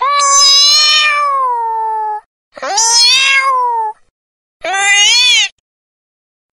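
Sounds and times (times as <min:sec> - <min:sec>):
cat meowing: 0:00.0 - 0:04.0, 0:04.6 - 0:05.6.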